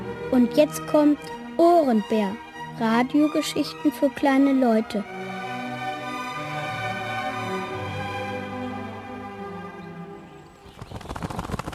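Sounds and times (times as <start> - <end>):
sustained tonal musical passage: 0.0 - 10.5
speech: 0.3 - 5.2
crow swooping in with wing flaps: 10.5 - 11.7.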